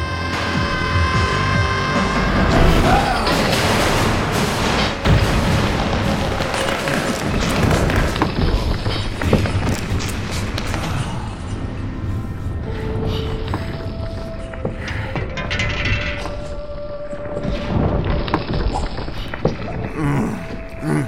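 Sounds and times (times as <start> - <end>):
explosion detonating in a basement: 0.0 - 20.7.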